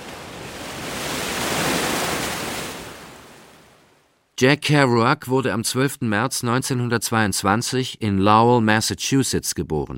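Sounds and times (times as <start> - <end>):
ocean waves surging: 0.0 - 4.2
speech: 4.4 - 9.9.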